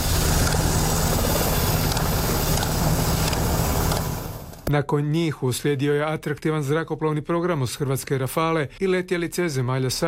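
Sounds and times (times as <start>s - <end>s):
military helicopter engine and rotor roaring overhead: 0.0s - 4.6s
speech: 4.7s - 10.0s.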